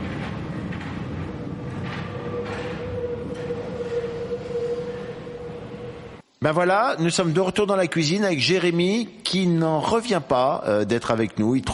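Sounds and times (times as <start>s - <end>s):
sustained metallic whine of subway train: 0.0s - 6.2s
subway train rumbling heard from inside the car: 0.0s - 6.3s
speech: 6.4s - 11.7s.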